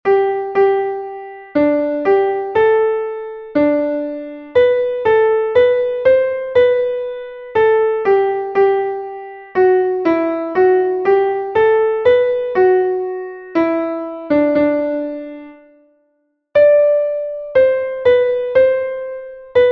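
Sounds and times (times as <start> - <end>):
piano playing a Christmas carol: 0.0 - 16.0, 16.6 - 19.6.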